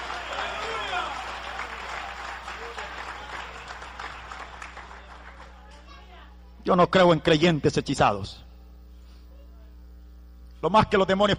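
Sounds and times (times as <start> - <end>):
audience applauding in praise: 0.0 - 5.9
speech: 6.6 - 8.5, 10.6 - 11.3.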